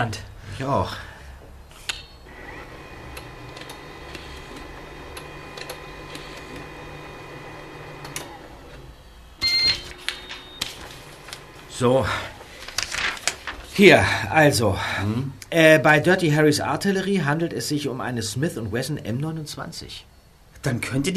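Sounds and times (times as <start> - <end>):
speech: 0.0 - 1.1, 11.8 - 12.4, 13.8 - 21.1
printer printing out an article: 2.2 - 13.8.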